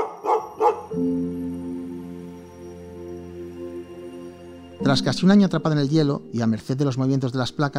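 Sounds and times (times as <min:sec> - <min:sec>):
sled dogs barking: 0:00.0 - 0:01.2
speech: 0:04.8 - 0:07.7.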